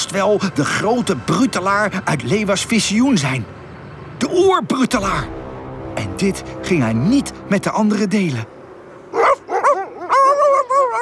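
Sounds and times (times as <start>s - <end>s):
speech: 0.1s - 3.6s, 4.3s - 5.4s, 6.0s - 8.5s
huskies barking loudly and yelping: 9.1s - 10.9s.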